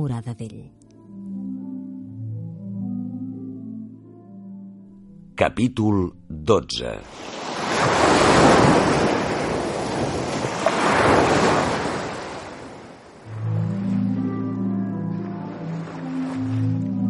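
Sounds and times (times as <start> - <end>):
speech: 0.0 - 0.8, 5.4 - 8.7
sea waves surging around a ship: 7.0 - 17.0.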